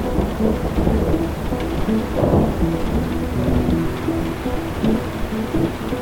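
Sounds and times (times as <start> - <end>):
low thunder rumbling: 0.0 - 6.0
steady dense rainfall: 0.0 - 6.0.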